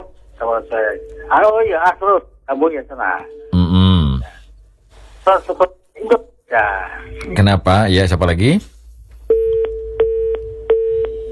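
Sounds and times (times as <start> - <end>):
telephone busy tone after a call disconnects: 0.4 - 1.8, 9.3 - 11.3
speech: 0.4 - 3.4, 5.3 - 8.7.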